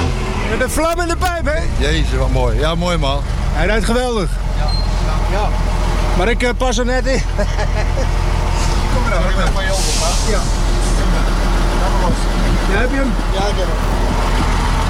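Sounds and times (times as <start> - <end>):
heavy truck engine rumbling while driven: 0.0 - 14.8
speech: 0.5 - 14.2
laughter: 7.0 - 9.0
air hiss: 9.6 - 11.1.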